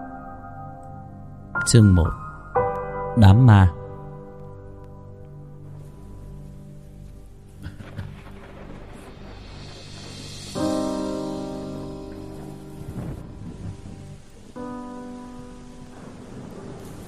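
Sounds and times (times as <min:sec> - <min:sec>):
speech: 0:01.6 - 0:02.2, 0:03.2 - 0:03.8
evening rain falling in a village: 0:05.7 - 0:17.0
low rumbling: 0:06.1 - 0:17.0.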